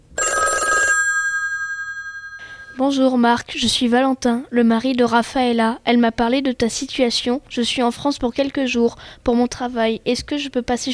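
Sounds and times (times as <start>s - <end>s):
old-style telephone bell ringing: 0.0s - 3.0s
speech: 2.8s - 10.9s.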